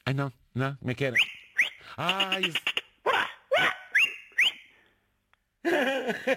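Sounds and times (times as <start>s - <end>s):
speech: 0.1s - 2.7s, 6.1s - 6.3s
shepherd's whistle calling the flock: 1.1s - 2.5s, 3.6s - 4.8s
dog-like yelps: 3.1s - 4.6s
laughter: 5.6s - 6.3s.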